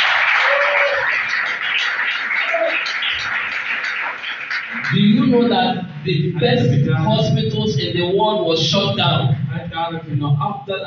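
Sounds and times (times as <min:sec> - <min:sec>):
large crowd clapping hands: 0:00.0 - 0:05.4
speech: 0:05.3 - 0:10.8.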